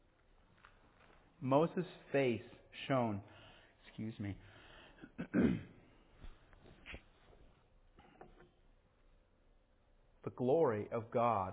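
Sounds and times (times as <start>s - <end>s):
speech: 1.4s - 3.4s, 4.0s - 5.7s, 10.2s - 11.5s
person coughing: 5.0s - 5.9s
throat clearing: 5.0s - 5.9s.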